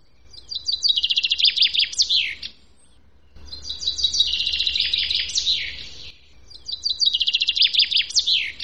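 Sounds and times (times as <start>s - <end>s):
common chaffinch singing: 0.0s - 8.6s.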